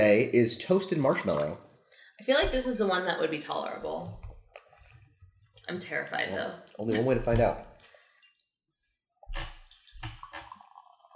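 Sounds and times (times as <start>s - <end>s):
speech: 0.0s - 4.2s, 5.7s - 7.7s
toasted-marshmallow-flavored seltzer pouring into a glass: 9.6s - 11.1s.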